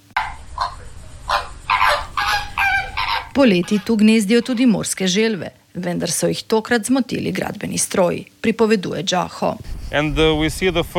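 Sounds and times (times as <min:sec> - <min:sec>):
flamingos honking at a nesting colony: 0:00.0 - 0:04.8
speech: 0:03.4 - 0:10.9.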